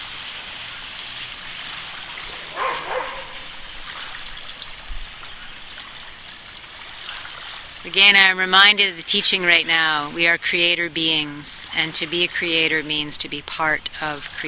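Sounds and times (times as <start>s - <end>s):
steady roar of waves washing onto the shore: 0.0s - 14.4s
dog barking while chasing crashing waves on the shore: 2.2s - 3.5s
speech: 7.8s - 14.4s.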